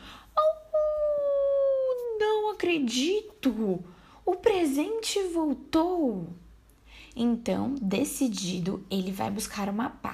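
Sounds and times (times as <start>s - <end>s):
person imitating a wolf howl: 0.4s - 2.1s
speech: 2.6s - 6.4s, 7.1s - 10.1s.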